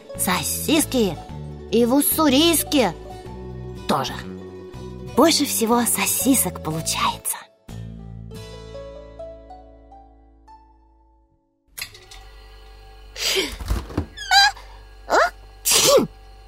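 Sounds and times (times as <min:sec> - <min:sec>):
speech: 0:00.2 - 0:03.0, 0:03.9 - 0:04.4, 0:05.2 - 0:07.3
thunk: 0:13.6 - 0:14.2
dog sneezing: 0:15.1 - 0:16.1.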